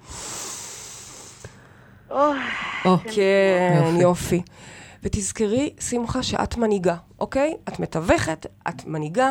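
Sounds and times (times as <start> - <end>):
deep breath in and out: 0.0 - 3.0, 4.5 - 5.0
speech: 2.1 - 9.3.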